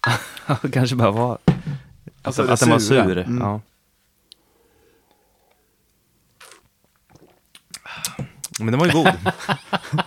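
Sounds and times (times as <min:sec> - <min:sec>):
speech: 0:00.1 - 0:01.5, 0:02.2 - 0:03.7, 0:08.6 - 0:10.0
wet smacking while eating: 0:06.3 - 0:08.7
laughter: 0:08.7 - 0:10.0.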